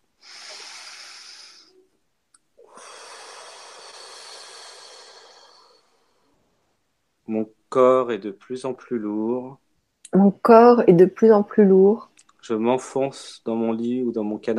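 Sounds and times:
slow deep breath: 0.1s - 1.9s, 2.6s - 6.6s
speech: 7.3s - 14.5s.

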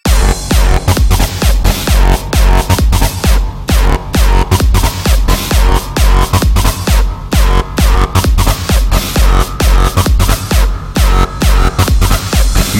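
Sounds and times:
loud dense electronic dance music with heavy bass drop: 0.0s - 12.7s
thick distorted low-end thumping: 0.0s - 12.7s.

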